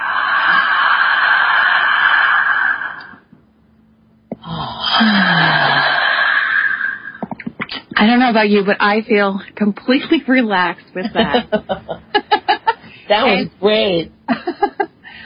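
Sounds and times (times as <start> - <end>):
slow deep breathing during a guided relaxation exercise: 0.0 - 3.3, 4.3 - 7.2, 15.0 - 15.2
speech: 8.0 - 12.0, 13.1 - 14.2
laughter: 11.0 - 13.4, 14.3 - 15.0.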